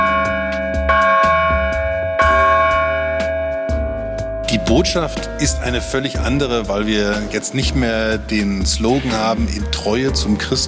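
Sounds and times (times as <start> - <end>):
new church bell ringing: 0.0 - 5.0
speech: 4.7 - 10.6.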